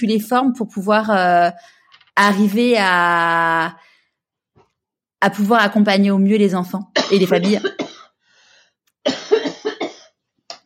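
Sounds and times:
speech: 0.0s - 3.9s, 5.2s - 7.8s
person coughing: 7.0s - 8.2s, 9.1s - 10.2s.

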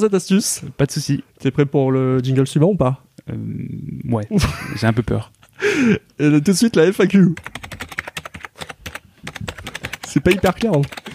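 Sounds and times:
speech: 0.0s - 7.6s, 10.2s - 11.0s
rapid computer keyboard typing with crisp key clicks: 7.4s - 11.1s.

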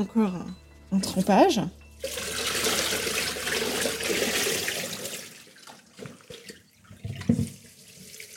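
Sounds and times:
speech: 0.0s - 2.2s
tap water running as something is rinsed by hand: 2.0s - 8.3s.

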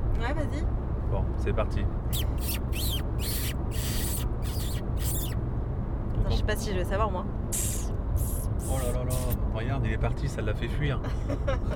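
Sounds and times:
steady low outdoor rumble: 0.0s - 11.7s
speech: 0.3s - 5.4s, 6.2s - 8.0s, 8.6s - 11.7s
kissing squeaks against the skin of a wrist to lure a fox: 2.1s - 5.4s, 7.5s - 9.4s
laughter: 11.1s - 11.7s.

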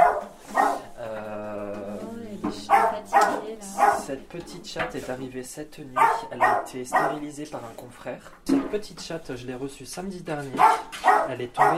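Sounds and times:
small guide dog puppy yipping barks: 0.0s - 0.8s, 6.0s - 7.2s, 10.6s - 11.7s
person murmuring: 0.8s - 4.2s
speech: 4.1s - 11.7s.

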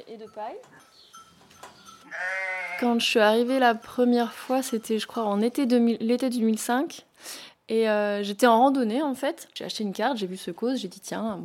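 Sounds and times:
speech: 0.1s - 11.4s
dairy ewes bleating in a sheepfold: 2.0s - 3.1s.

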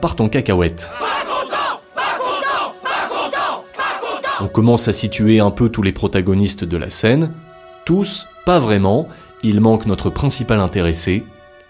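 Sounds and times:
speech: 0.0s - 1.4s, 4.4s - 11.4s
rioting crowd shouting: 0.9s - 4.4s.

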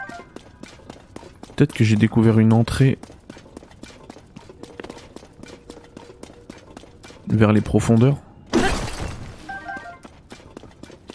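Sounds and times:
speech: 1.6s - 3.2s, 7.4s - 8.2s
object shattering in an action-adventure video game: 8.5s - 9.6s.

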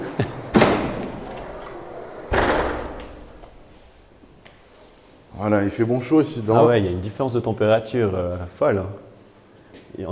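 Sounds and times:
laughter: 0.0s - 1.8s
low scraping rumble: 0.2s - 4.4s
heavy wooden double door creaking open at a barrel cellar entrance: 0.4s - 4.3s
speech: 5.4s - 9.0s, 9.9s - 10.1s.

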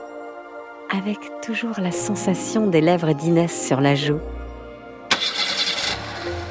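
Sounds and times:
speech: 0.9s - 4.4s
car engine cranking then settling into idle: 5.1s - 6.4s.

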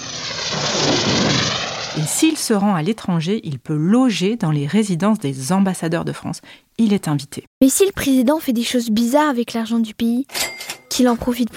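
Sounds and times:
airplane engine roar: 0.0s - 2.2s
speech: 2.2s - 11.5s.

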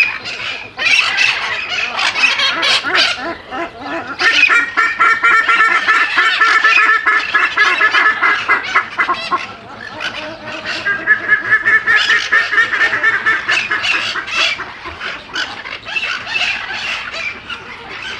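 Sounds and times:
overlapping bird calls in a South American aviary: 0.0s - 18.1s.

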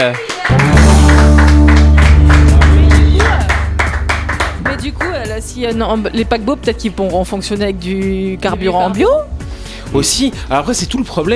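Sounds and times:
speech: 0.0s - 0.9s, 5.4s - 11.3s
steady rhythmic hand claps: 0.0s - 5.2s
sustained low musical tones: 0.5s - 10.6s.

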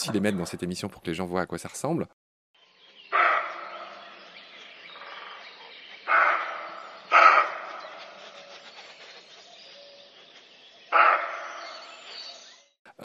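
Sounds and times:
speech: 0.0s - 2.2s
roe deer barking calls: 3.1s - 4.0s, 6.1s - 7.7s, 11.0s - 11.6s.

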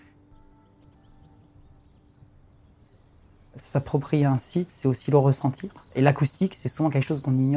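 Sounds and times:
cricket chirping at a natural site in Île-de-France: 0.4s - 1.2s, 2.8s - 3.0s, 4.4s - 6.0s, 6.7s - 7.5s
speech: 3.6s - 7.5s.

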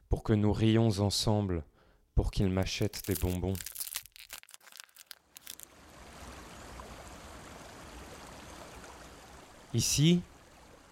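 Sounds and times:
speech: 0.3s - 3.7s, 9.7s - 10.3s
crackling and rustling bursts: 2.6s - 5.9s
river water flowing over rocks: 4.7s - 10.8s.

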